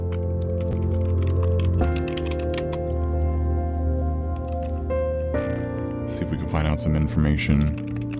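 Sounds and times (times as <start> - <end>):
typing on a computer keyboard: 0.0 - 3.1, 7.3 - 8.1
steady droning musical backdrop with shifting chords: 0.0 - 8.1
speech: 6.3 - 7.9.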